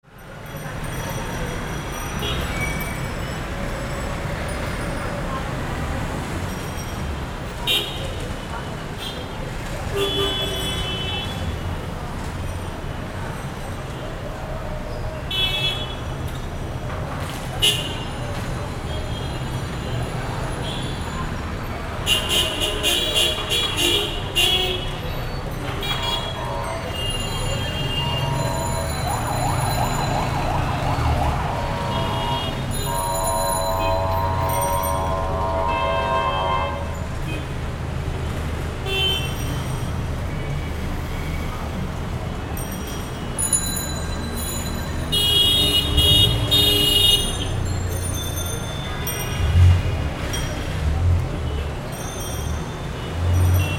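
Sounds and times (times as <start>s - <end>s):
street ambience in Bangladesh: 0.0s - 53.7s.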